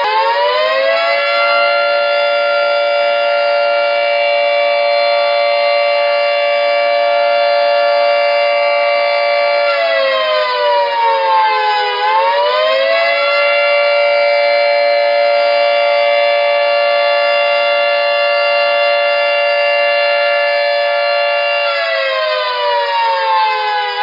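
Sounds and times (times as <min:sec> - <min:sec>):
industrial siren: 0:00.0 - 0:24.0.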